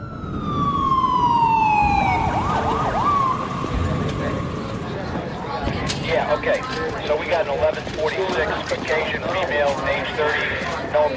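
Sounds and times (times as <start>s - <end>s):
emergency vehicle siren wailing and yelping: 0.0s - 6.0s
traffic rumble: 0.0s - 11.1s.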